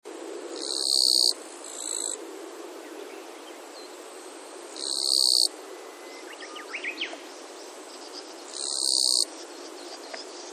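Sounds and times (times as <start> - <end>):
insect buzzing: 0.4 - 6.1, 7.0 - 10.5.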